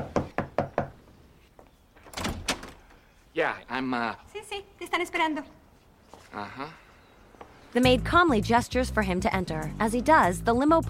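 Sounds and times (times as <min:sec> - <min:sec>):
knocking on the wooden front door of a mansion: 0:00.0 - 0:01.0
speech: 0:03.4 - 0:05.6, 0:06.3 - 0:06.8, 0:07.7 - 0:10.8.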